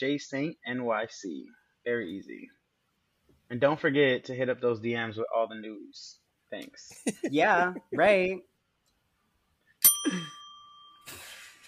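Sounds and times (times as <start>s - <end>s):
speech: 0.0s - 2.6s, 3.5s - 8.5s, 10.0s - 10.4s
bell ringing: 9.8s - 11.6s.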